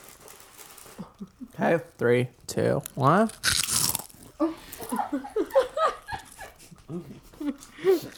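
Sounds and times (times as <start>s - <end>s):
speech: 1.6s - 3.5s, 4.4s - 5.4s, 6.9s - 8.1s
crunchy bite of crisp food: 3.3s - 4.3s.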